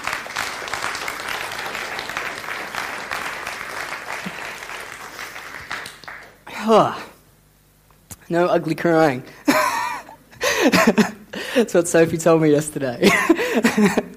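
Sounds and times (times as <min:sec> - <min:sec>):
audience applause: 0:00.0 - 0:06.7
speech: 0:06.6 - 0:07.0, 0:08.3 - 0:09.4, 0:10.6 - 0:14.1.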